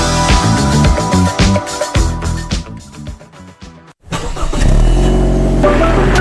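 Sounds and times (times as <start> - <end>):
upbeat music: 0.0 - 4.0, 5.6 - 6.1
car engine cranking and starting: 4.0 - 6.1.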